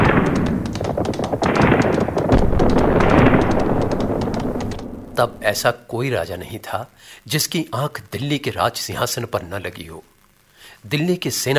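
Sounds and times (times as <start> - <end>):
galloping hoofbeats of warriors' horses: 0.0 - 4.8
loud dense rumble: 1.4 - 5.7
speech: 5.2 - 10.1, 10.8 - 11.5.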